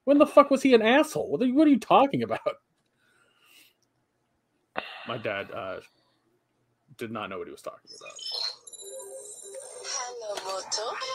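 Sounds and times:
speech: 0.1s - 2.7s, 5.1s - 6.0s, 7.0s - 8.5s, 10.3s - 11.1s
mobile phone ringtone for an incoming call with steady electronic tones: 8.3s - 10.2s.

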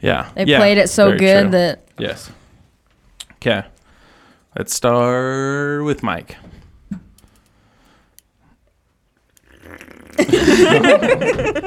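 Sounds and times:
speech: 0.0s - 2.4s, 3.4s - 3.7s, 4.5s - 6.5s, 10.2s - 11.6s
deep croaky gurgling belch from drinking beer: 9.4s - 10.9s
laughter: 10.2s - 11.6s.

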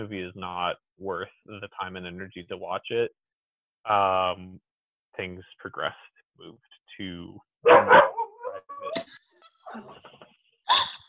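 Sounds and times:
speech: 0.0s - 3.2s, 3.8s - 10.9s
puppy yipping and barking: 7.6s - 8.9s.

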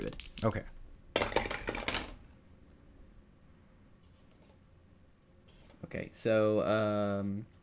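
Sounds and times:
wooden die and red die clattering across a hard surface: 0.0s - 2.3s
speech: 0.4s - 0.8s, 5.9s - 7.6s.

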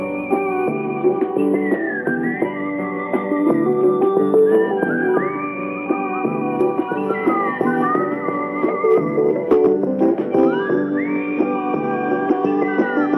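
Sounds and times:
person whistling a sliding melody: 0.0s - 13.1s
steady instrumental backing: 0.0s - 13.1s.

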